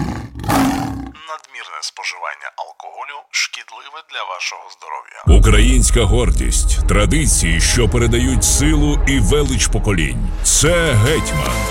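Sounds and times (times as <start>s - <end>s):
lion roar sound effect: 0.0s - 1.2s
speech: 1.3s - 11.7s.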